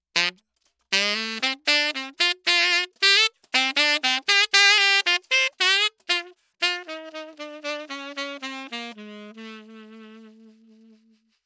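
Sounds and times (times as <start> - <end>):
saxophone: 0.1 - 11.4.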